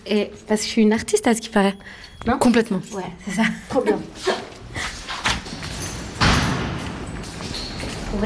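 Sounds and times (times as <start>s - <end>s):
speech: 0.0s - 4.5s
artists-only door thumping and scraping open: 5.2s - 7.8s.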